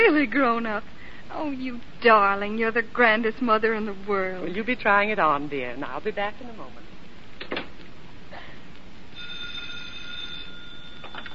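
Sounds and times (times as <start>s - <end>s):
speech: 0.0s - 7.6s
telephone ringing: 9.1s - 11.3s.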